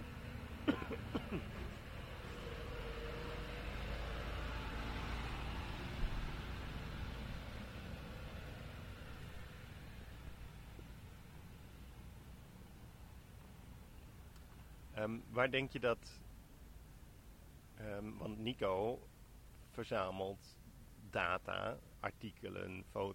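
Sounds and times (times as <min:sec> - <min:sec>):
heavy vehicle rumbling roar: 0:00.0 - 0:15.5
speech: 0:15.0 - 0:16.2, 0:17.8 - 0:19.1, 0:19.8 - 0:23.1.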